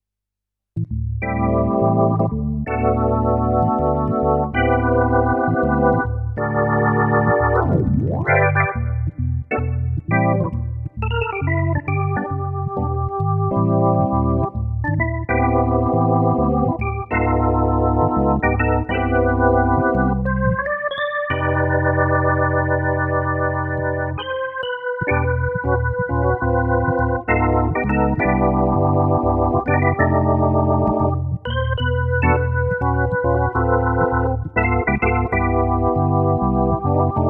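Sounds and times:
digital stage piano jazz organ: 1.2s - 37.2s.

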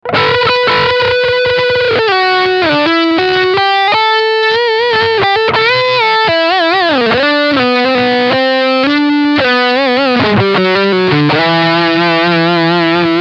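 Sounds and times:
ESP LTD EC-401 lead electric guitar on neck pickup: 0.0s - 13.1s.

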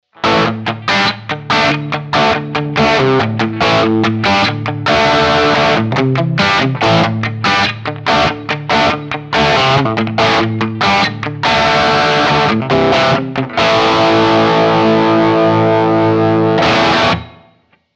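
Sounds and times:
Gibson Les Paul LPM electric guitar bridge pickup crunch: 0.0s - 17.6s.

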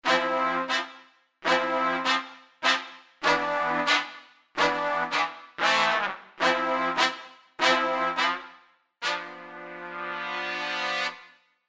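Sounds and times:
trumpet horns: 0.0s - 11.4s.

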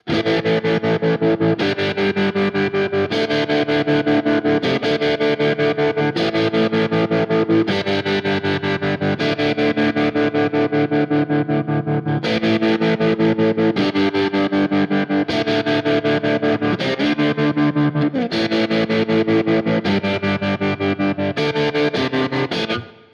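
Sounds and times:
surf guitar tremolo effect: 0.0s - 22.9s.

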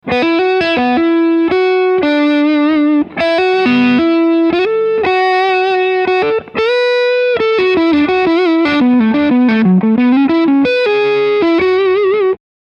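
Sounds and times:
Epiphone Sheraton II neck overdrive: 0.0s - 12.4s.

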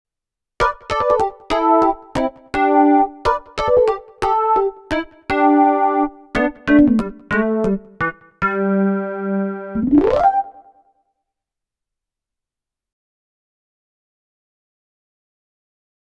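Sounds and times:
Modal Electronics Cobalt5s synthesizer: 0.6s - 10.8s.

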